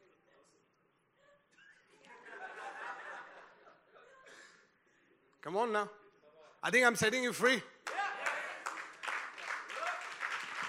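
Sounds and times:
laughter: 1.6 - 4.7
speech: 5.5 - 6.0, 6.6 - 7.7
audience applauding: 7.8 - 10.6.

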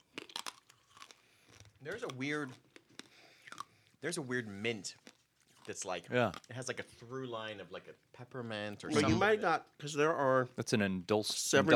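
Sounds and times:
crunching a Necco wafer hard candy being bitten and chewed: 0.0 - 7.6
speech: 1.8 - 2.7, 4.0 - 11.7
person murmuring: 8.9 - 9.3.

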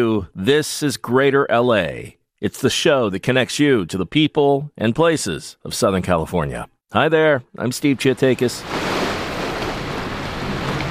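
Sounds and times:
speech: 0.0 - 8.9
Pacific Ocean surf washing onto the shore: 8.2 - 10.8.

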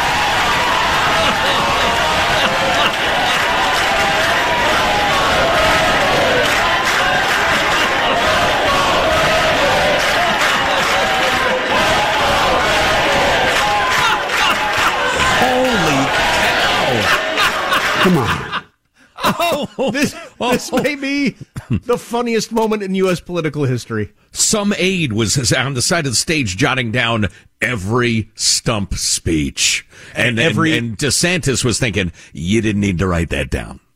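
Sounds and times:
cheers and whoops: 0.0 - 18.6
large crowd chanting rhythmically: 0.0 - 18.6
laughter: 0.0 - 21.9, 30.2 - 30.9
speech: 19.9 - 33.8.

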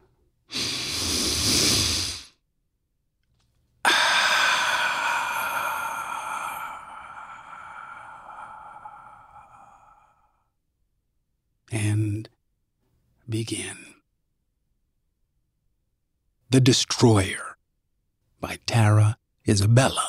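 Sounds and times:
deep breath in and out: 0.5 - 2.4, 3.8 - 10.6
speech: 13.3 - 13.8, 16.5 - 17.5, 18.4 - 20.0.

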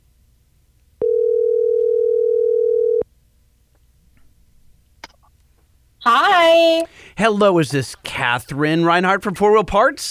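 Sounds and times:
telephone dial tone: 1.0 - 3.0
speech: 6.0 - 10.0.

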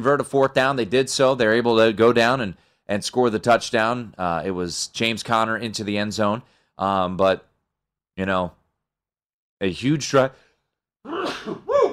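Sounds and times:
speech: 0.0 - 7.5, 8.2 - 8.6, 9.6 - 10.4
loud sneeze: 11.1 - 11.9.

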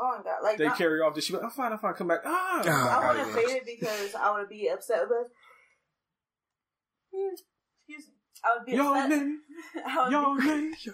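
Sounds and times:
speech: 0.2 - 5.5, 7.2 - 10.9
person yawning: 2.3 - 3.2
person murmuring: 2.3 - 4.1.

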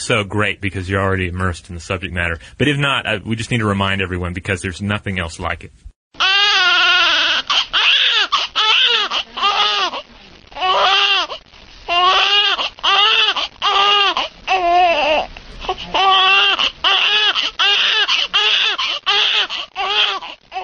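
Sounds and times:
speech: 0.0 - 6.2
infant crying and screaming: 6.2 - 20.6.

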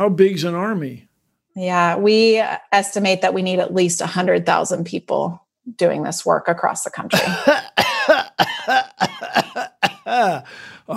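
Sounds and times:
speech: 0.0 - 9.4, 10.1 - 10.9
person coughing deliberately for comedic effect: 7.1 - 10.9.

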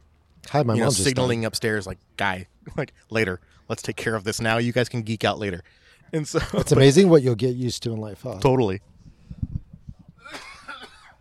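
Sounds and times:
speech: 0.5 - 9.5
person coughing from coffee grounds caught in the throat: 10.2 - 11.1.

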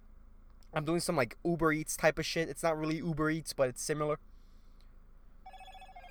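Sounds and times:
low steady rumble: 0.0 - 6.0
speech: 0.8 - 4.3
phone ringing with a fast-warbling electronic trill: 5.4 - 6.0.

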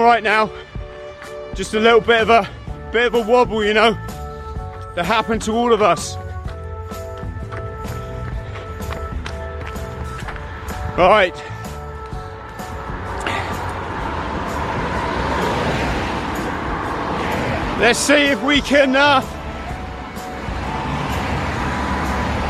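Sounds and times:
speech: 0.0 - 0.7, 1.5 - 4.1, 5.0 - 6.2, 11.0 - 11.5, 17.8 - 19.4
roadside traffic rumble of passing cars: 0.0 - 22.4.

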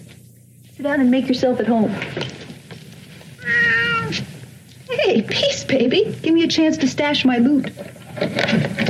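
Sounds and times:
speech: 0.8 - 2.4, 4.9 - 8.8
cat meowing: 3.4 - 4.2.

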